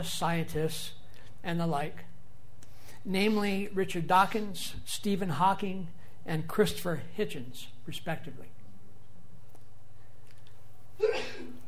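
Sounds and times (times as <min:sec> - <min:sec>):
speech: 0:00.0 - 0:02.1, 0:03.0 - 0:08.6
low steady hum: 0:00.0 - 0:11.6
person sneezing: 0:11.0 - 0:11.6.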